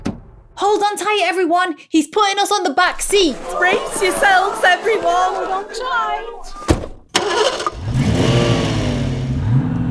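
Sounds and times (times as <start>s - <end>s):
speech: 0.6s - 6.6s
laughter: 3.0s - 6.7s
car engine starting and revving as the car pulls away: 7.1s - 9.8s.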